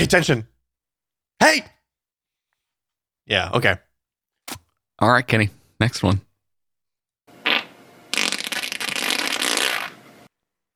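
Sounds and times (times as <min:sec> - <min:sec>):
speech: 0:00.0 - 0:00.5, 0:01.4 - 0:01.8, 0:03.3 - 0:03.8, 0:05.0 - 0:06.3
human fart: 0:07.4 - 0:10.0.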